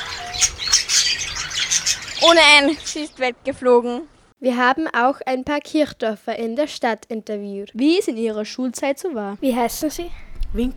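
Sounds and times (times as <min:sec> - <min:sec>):
birds chirping and squawking: 0:00.0 - 0:04.3
speech: 0:00.4 - 0:00.6, 0:02.2 - 0:10.7.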